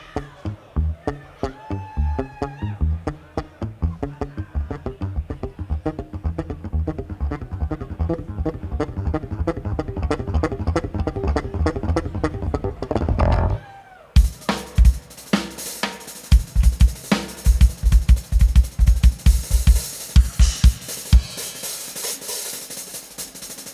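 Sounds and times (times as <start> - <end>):
bass: 0.0 - 13.6, 14.2 - 21.8
drums: 12.5 - 23.7.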